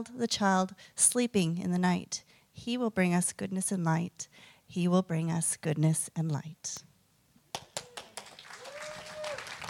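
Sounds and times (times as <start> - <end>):
speech: 0.0 - 6.9
audience applause after a song: 7.5 - 9.6.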